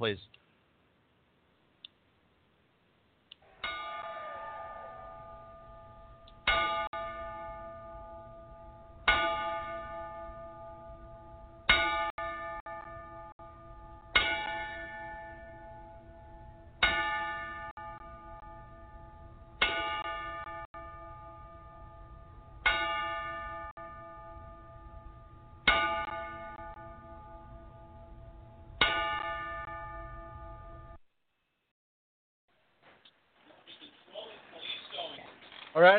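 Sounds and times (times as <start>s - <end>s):
speech: 0.0s - 0.4s, 35.8s - 35.9s
ring bell struck in a ten-bell salute: 3.6s - 31.0s.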